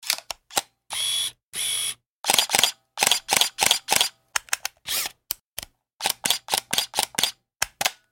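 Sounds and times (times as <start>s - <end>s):
Canon T2i camera: 0.9s - 4.2s, 4.9s - 5.2s, 6.0s - 7.4s.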